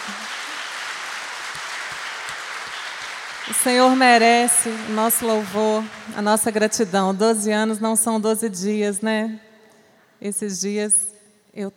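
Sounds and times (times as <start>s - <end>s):
church congregation applauding at a church anniversary service: 0.0s - 6.8s
speech: 3.5s - 9.4s, 10.2s - 11.7s.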